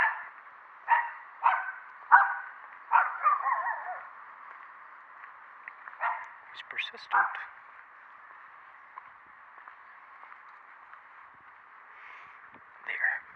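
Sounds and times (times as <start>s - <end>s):
small dog barking: 0.0s - 0.3s, 0.9s - 4.1s, 6.0s - 7.6s
speech: 6.6s - 7.6s.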